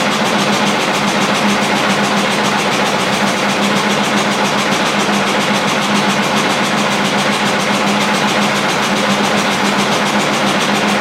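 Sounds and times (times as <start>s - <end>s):
machine vibration: 0.0s - 10.9s.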